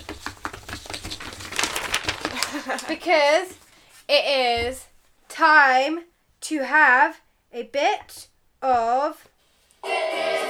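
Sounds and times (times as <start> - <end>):
papers being shuffled: 0.0 - 4.9
speech: 2.7 - 10.0.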